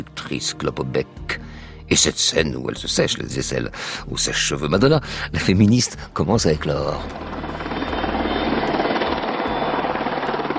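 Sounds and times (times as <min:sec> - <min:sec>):
speech: 0:00.0 - 0:01.2, 0:01.9 - 0:07.4
helicopters hovering over a wedding ceremony: 0:06.6 - 0:10.5.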